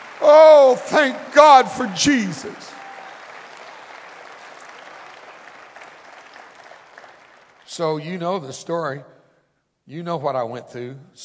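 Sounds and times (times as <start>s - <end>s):
audience clapping in a reverberant church: 0.0s - 8.0s
speech: 0.2s - 2.8s, 7.8s - 9.1s, 9.9s - 11.2s.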